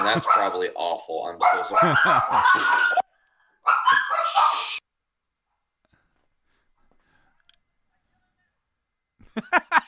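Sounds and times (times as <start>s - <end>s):
speech: 0.0s - 3.0s, 9.4s - 9.7s
dogs barking: 0.0s - 4.7s
laughter: 1.7s - 3.0s, 9.2s - 9.8s.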